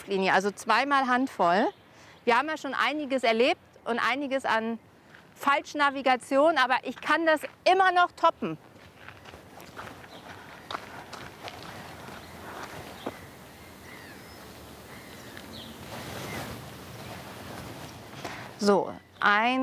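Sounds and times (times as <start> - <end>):
speech: 0.0 - 8.7, 18.6 - 19.6
footsteps crunching outdoors: 8.6 - 18.8.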